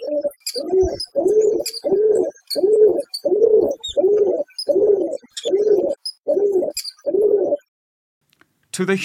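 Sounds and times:
birds chirping: 0.0 - 7.7
pigeon-like creatures cooing outside a home: 0.0 - 7.7
speech: 8.8 - 9.0.

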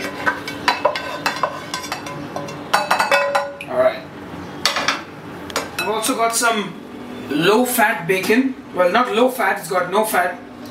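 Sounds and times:
utensils clinking and scraping against dishes putting mushrooms into a bowl: 0.0 - 3.7
speech: 6.0 - 10.7.

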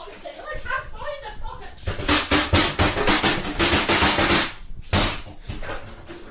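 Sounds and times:
people talking: 0.0 - 1.9
fist pounding a sink with harsh metallic bangs: 1.9 - 5.6.

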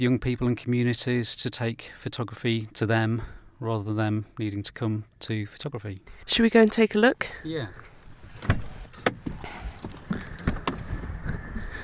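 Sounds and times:
speech: 0.0 - 9.2
car door clunks and clicks as someone steps out of a car: 8.3 - 11.0.

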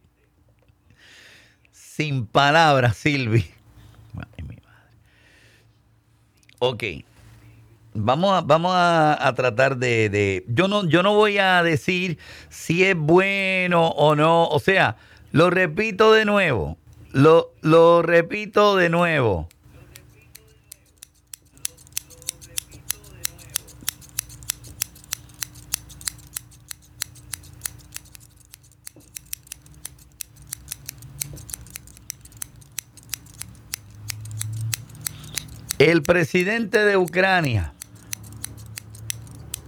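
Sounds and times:
speech: 2.0 - 3.6, 6.6 - 7.1, 8.0 - 19.6, 35.9 - 37.8
scissors clicked rhythmically like castanets: 19.5 - 39.6.

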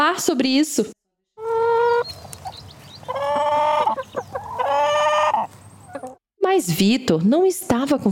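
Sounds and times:
speech: 0.1 - 1.0, 6.6 - 8.1
hen clucking and squawking: 1.4 - 6.2.

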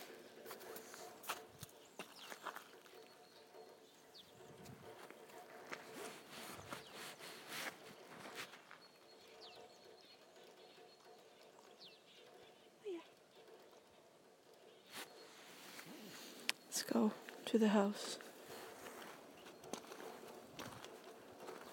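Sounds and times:
faint birdsong: 0.0 - 21.7
footsteps walking outdoors with crisp crunch: 0.1 - 3.1, 4.6 - 8.9, 14.9 - 21.7
speech: 16.8 - 18.2.

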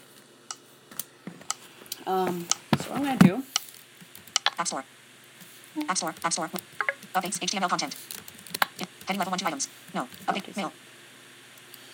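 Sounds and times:
speech: 2.1 - 3.6, 4.6 - 5.0, 5.8 - 6.6, 7.2 - 8.0, 9.1 - 10.9
soft electronic clicking from a computer running Handbrake Batch software: 4.3 - 4.6.

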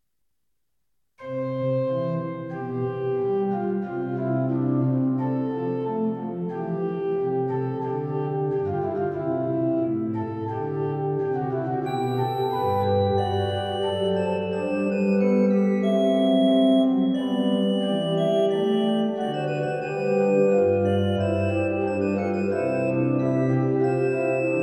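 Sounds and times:
trio for organ: 1.2 - 24.6.

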